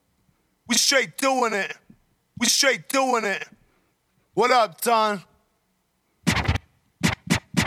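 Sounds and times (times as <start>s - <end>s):
speech: 0.8s - 3.6s, 4.4s - 5.3s
DJ turntable scratch sample from music app: 6.2s - 7.6s.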